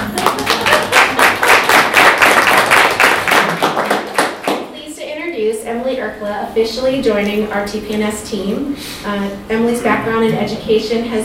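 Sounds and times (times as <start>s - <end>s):
crowd applauding at a staff introduction event: 0.0s - 4.7s
speech: 6.2s - 11.2s.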